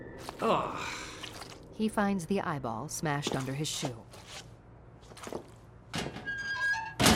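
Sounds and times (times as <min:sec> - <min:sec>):
speech: 0:00.2 - 0:01.0, 0:01.8 - 0:04.5
metal locker door being shut: 0:06.0 - 0:07.1.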